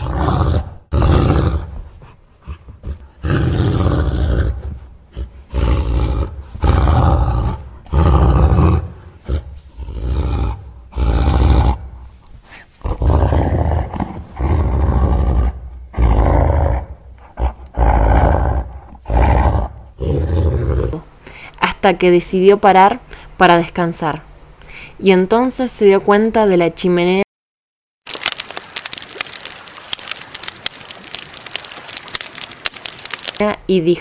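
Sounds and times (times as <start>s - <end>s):
angry wolf growling and roaring while blowing at a house: 0.0s - 21.0s
speech: 21.8s - 24.3s, 25.0s - 27.2s, 33.7s - 34.0s.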